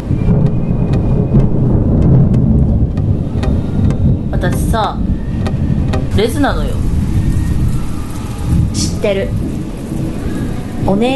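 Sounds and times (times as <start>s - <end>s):
distant thunder rumbling: 0.0s - 11.1s
sharp little taps: 0.4s - 6.5s
speech: 4.4s - 5.1s, 6.2s - 6.9s, 8.8s - 9.5s, 10.9s - 11.1s.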